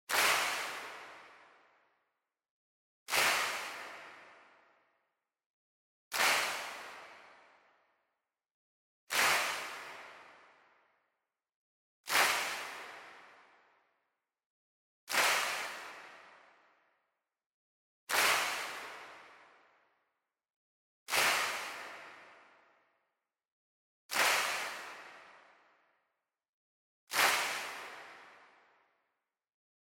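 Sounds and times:
distant slow handclaps: 0.1s - 1.6s, 3.1s - 4.7s, 6.1s - 7.7s, 9.1s - 10.7s, 12.1s - 13.6s, 15.1s - 16.7s, 18.1s - 19.6s, 21.1s - 22.7s, 24.1s - 25.6s, 27.1s - 28.8s.

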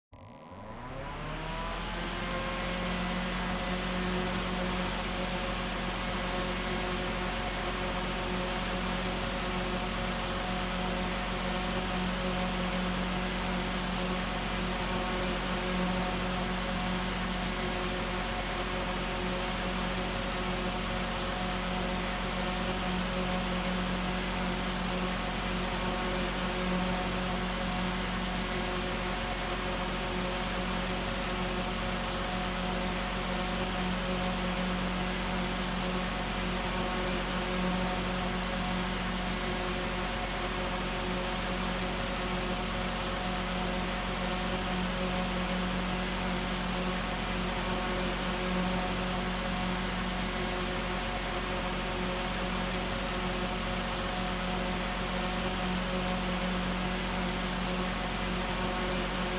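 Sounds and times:
electric fan running on high setting: 0.1s - 59.3s.

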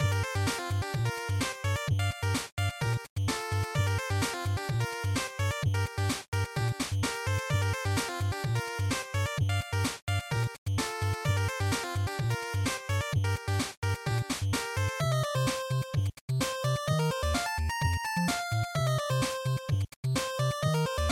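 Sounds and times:
background music loop: 0.0s - 21.1s.

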